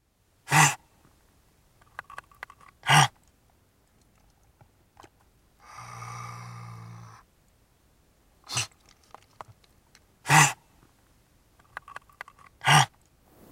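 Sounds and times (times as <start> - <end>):
river otter snorts: 0.5 - 0.8, 2.8 - 3.2, 5.6 - 7.2, 8.5 - 8.8, 10.3 - 10.6, 12.6 - 13.0.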